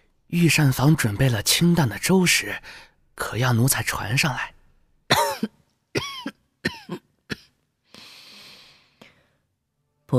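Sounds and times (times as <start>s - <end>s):
speech: 0.3s - 4.6s, 5.4s - 7.0s
muffled coughing from a woman lying on a couch: 5.1s - 7.6s.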